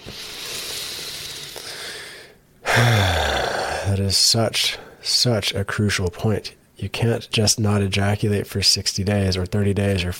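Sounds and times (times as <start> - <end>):
long deep breath drawn in: 0.0 - 3.9
speech: 4.0 - 10.1.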